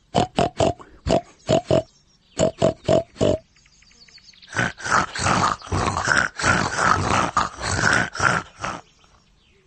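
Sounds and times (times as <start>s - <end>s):
pig grunting and snorting: 0.2s - 3.4s, 4.5s - 8.9s.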